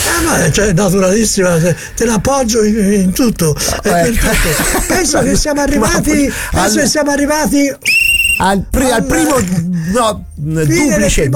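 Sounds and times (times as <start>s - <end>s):
speech: 0.3s - 11.3s
laughter: 3.2s - 6.9s, 9.0s - 10.0s
referee whistle blast: 7.8s - 8.5s.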